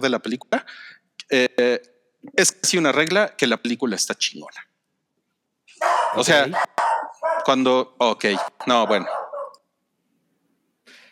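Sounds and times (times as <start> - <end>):
speech: 0.0 - 4.7, 5.8 - 9.2
small dog barking: 5.8 - 7.6, 8.3 - 9.6.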